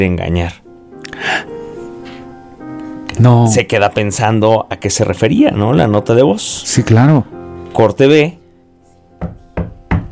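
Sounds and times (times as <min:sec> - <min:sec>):
speech: 0:00.0 - 0:01.5, 0:03.2 - 0:08.4
knocking on a door: 0:09.2 - 0:10.1.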